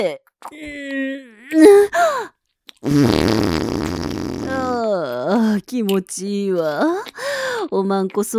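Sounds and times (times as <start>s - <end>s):
speech: 0.0s - 3.6s, 5.0s - 8.3s
farting: 2.8s - 4.8s.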